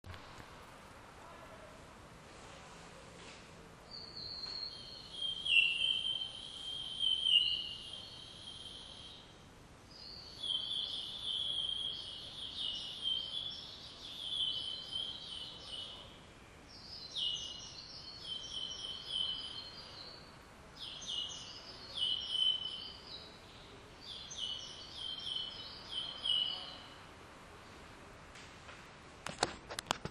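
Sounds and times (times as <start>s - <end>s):
background hiss: 0.0s - 30.0s
bird twittering song: 3.9s - 9.3s, 9.9s - 16.1s, 16.7s - 27.0s.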